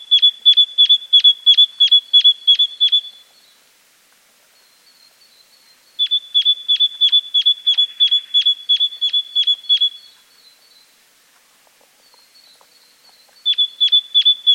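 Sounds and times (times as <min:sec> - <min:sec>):
great tit Parus major calling: 0:00.0 - 0:03.3, 0:06.0 - 0:10.9, 0:12.1 - 0:14.5.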